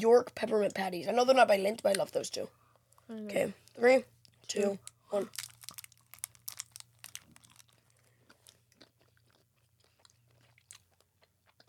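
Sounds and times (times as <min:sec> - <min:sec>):
speech: 0:00.0 - 0:05.4
chewing dark chocolate: 0:04.2 - 0:11.6.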